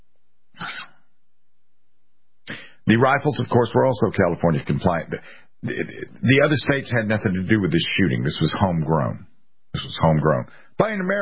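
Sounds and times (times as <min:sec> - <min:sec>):
single short sharp sneeze: 0:00.6 - 0:01.1
speech: 0:02.9 - 0:11.2.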